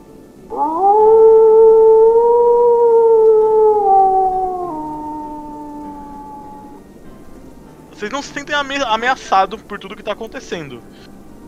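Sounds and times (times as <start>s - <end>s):
speech: 0.5s - 0.8s, 8.0s - 11.2s
wolf howling: 0.5s - 6.9s.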